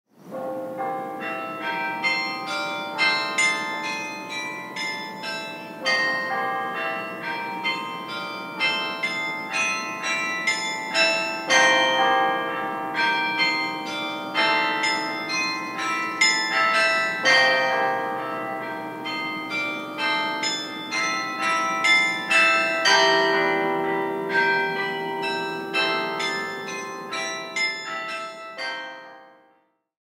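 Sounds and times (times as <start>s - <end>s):
carillon arrangement with arpeggios and a delicate woven melodic line: 0.8s - 29.4s.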